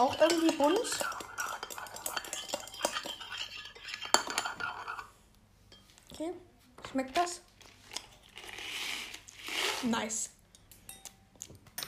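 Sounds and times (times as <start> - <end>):
speech: 0.0 - 1.2, 6.2 - 7.5, 9.8 - 10.4
spoon stirring a drink of Smarties and yoghurt in a glass: 0.0 - 5.1.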